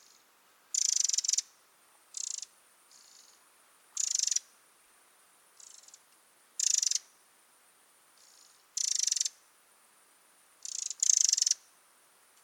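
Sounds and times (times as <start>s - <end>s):
Eurasian wren Troglodytes troglodytes giving churr calls: 0.0s - 3.4s, 4.0s - 4.5s, 5.6s - 6.0s, 6.6s - 7.1s, 8.2s - 9.4s, 10.6s - 11.6s.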